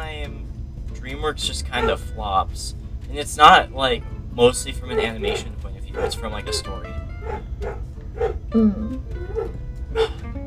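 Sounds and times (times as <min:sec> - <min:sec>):
low rumble: 0:00.0 - 0:10.4
speech: 0:01.2 - 0:09.1
dog barking and whimpering: 0:01.8 - 0:02.0, 0:04.9 - 0:06.6, 0:07.2 - 0:08.4, 0:09.2 - 0:10.2.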